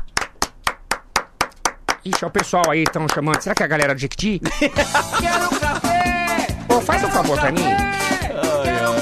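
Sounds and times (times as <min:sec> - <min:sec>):
single person clapping hands: 0:00.0 - 0:04.0
speech: 0:02.0 - 0:06.1, 0:06.8 - 0:09.0
laughter: 0:04.4 - 0:06.2.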